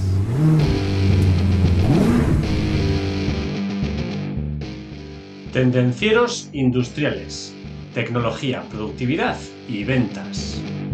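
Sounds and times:
engine revving and settling into a throaty idle: 0.0s - 3.7s
speech: 5.6s - 10.8s.

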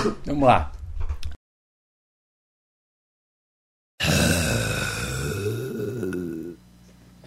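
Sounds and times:
speech: 0.0s - 0.8s
voice imitating an alien creature with rasping growl: 4.0s - 6.6s.

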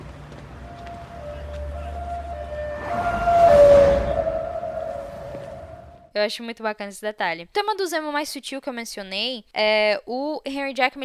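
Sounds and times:
police siren playing a musical theme on a street in Bucharest: 0.5s - 6.1s
low rumble on a street in Bucharest: 0.6s - 6.1s
speech: 6.2s - 11.0s.

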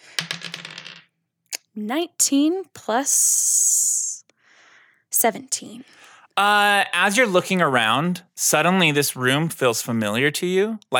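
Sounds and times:
dice clattering across a hard tabletop: 0.0s - 1.2s
speech: 1.8s - 3.9s, 5.2s - 10.9s.

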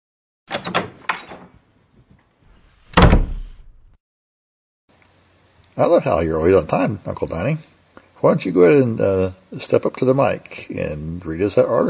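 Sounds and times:
door latch and handle rattling clicks: 0.5s - 1.4s
heavy wooden door thud: 2.9s - 3.9s
speech: 5.8s - 11.8s.

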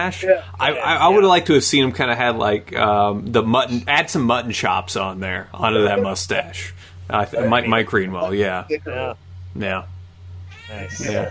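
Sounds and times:
speech: 0.0s - 9.9s, 10.7s - 11.2s
low hum: 0.0s - 11.2s
cat meowing: 10.5s - 11.2s.

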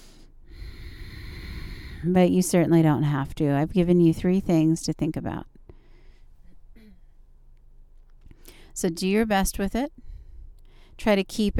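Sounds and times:
hissing breath pushed out through a narrowed throat: 0.0s - 2.0s
speech: 2.0s - 5.5s, 8.8s - 10.0s, 11.0s - 11.5s.

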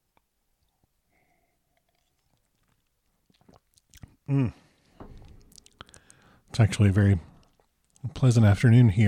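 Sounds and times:
person sipping red wine: 0.6s - 6.4s
person swallowing: 1.8s - 6.2s
speech: 4.3s - 4.6s, 6.6s - 7.3s, 8.0s - 9.0s
person humming mm: 4.3s - 4.7s.

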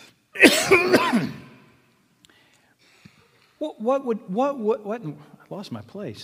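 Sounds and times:
harsh coughing and throat clearing: 0.4s - 1.7s
speech: 3.6s - 6.2s.

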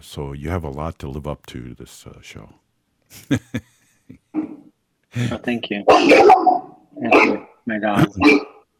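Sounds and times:
speech: 0.0s - 4.5s, 5.2s - 8.5s
dog barking: 5.9s - 7.5s, 8.2s - 8.6s.

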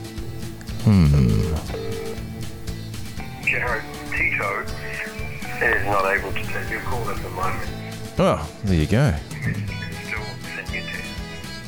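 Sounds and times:
electronic ringback tones of an outgoing phone call through a handset: 0.0s - 7.8s
speech: 0.9s - 1.8s, 3.5s - 9.8s.

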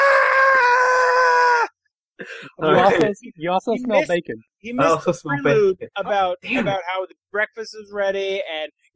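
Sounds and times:
person screaming in terror: 0.0s - 1.8s
speech: 2.6s - 8.9s.

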